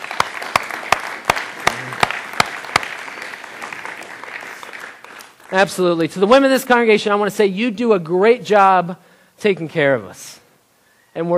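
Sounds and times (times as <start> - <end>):
sharp loud claps at a regular beat: 0.0 - 5.6
audience applauding: 0.0 - 5.8
speech: 5.5 - 10.4, 11.2 - 11.3.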